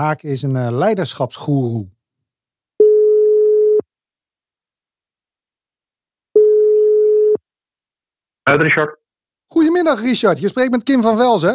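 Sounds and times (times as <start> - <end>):
speech: 0.0 - 2.0, 8.5 - 11.5
telephone ringback tone while a call is being placed: 2.8 - 3.8, 6.4 - 7.4.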